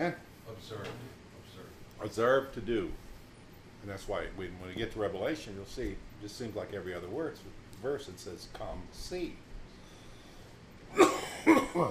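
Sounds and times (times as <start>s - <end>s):
speech: 0.0s - 1.1s, 2.0s - 3.0s, 3.8s - 9.4s, 10.9s - 11.8s
man coughing: 10.9s - 11.8s.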